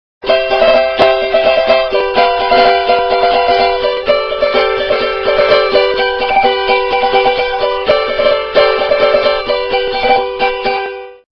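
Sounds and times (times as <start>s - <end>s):
cavaquinho: 0.2s - 11.2s.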